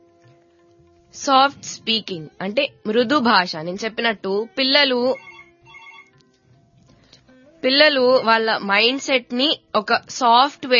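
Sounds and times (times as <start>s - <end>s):
speech: 1.2s - 5.3s, 7.6s - 10.7s
telephone ringtone for an incoming call: 4.4s - 6.2s.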